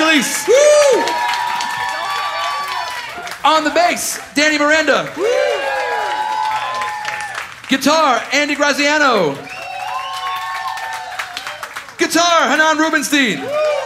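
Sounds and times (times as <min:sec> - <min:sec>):
man's amplified voice calling out: 0:00.0 - 0:00.7, 0:03.4 - 0:05.2, 0:07.7 - 0:09.4, 0:12.0 - 0:13.4
audience clapping and cheering: 0:00.0 - 0:13.8
speech: 0:00.1 - 0:01.2, 0:03.4 - 0:05.9, 0:07.7 - 0:09.6, 0:12.0 - 0:13.8.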